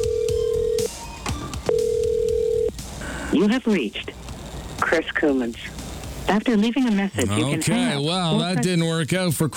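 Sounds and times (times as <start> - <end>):
electronic ringback tone of an outgoing phone call: 0.0 - 2.8
speech: 3.3 - 4.2, 4.9 - 9.5.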